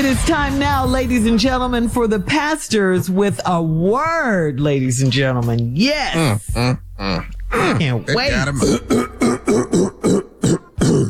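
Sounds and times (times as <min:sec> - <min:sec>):
speech: 0:00.0 - 0:09.9
man's rhythmic grunting bursts: 0:05.2 - 0:11.0
man clearing throat with sliding vocal tones: 0:06.1 - 0:11.0.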